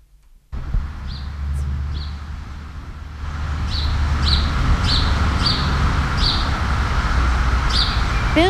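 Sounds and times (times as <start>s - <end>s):
constant low rumble of outdoor noise: 0.0s - 8.4s
bird chirping at dusk: 1.0s - 2.3s, 3.6s - 6.5s, 7.7s - 8.4s.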